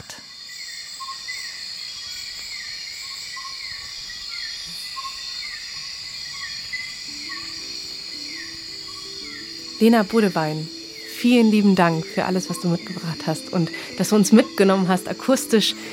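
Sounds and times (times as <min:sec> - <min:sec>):
nighttime chorus of insects chirping in the Borneo rainforest: 0:00.0 - 0:15.9
repeating descending calls: 0:07.1 - 0:15.9
speech: 0:09.8 - 0:15.9.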